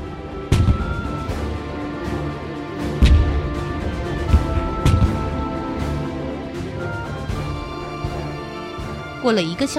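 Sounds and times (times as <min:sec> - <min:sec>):
steady low rumbling: 0:00.0 - 0:08.8
cannons firing on the deck of an anchored ship: 0:00.5 - 0:01.3, 0:02.8 - 0:05.8
speech: 0:09.2 - 0:09.7.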